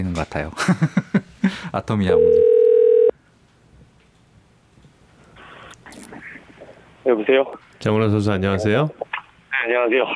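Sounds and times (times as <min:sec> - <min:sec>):
speech: 0:00.0 - 0:02.4, 0:07.1 - 0:10.1
laughter: 0:00.6 - 0:01.6
loud steady electronic telephone tone as a call is placed: 0:02.2 - 0:03.1.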